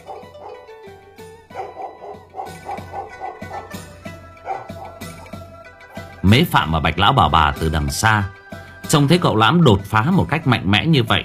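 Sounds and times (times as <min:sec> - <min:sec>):
excited grey-coated dog barking: 0:00.0 - 0:00.7, 0:01.5 - 0:06.1
speech: 0:06.2 - 0:11.2.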